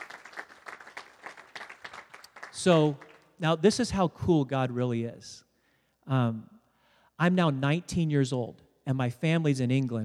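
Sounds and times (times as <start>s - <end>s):
audience clapping at a Christian sermon: 0.0s - 3.4s
speech: 2.6s - 5.5s, 6.1s - 6.5s, 7.2s - 10.0s.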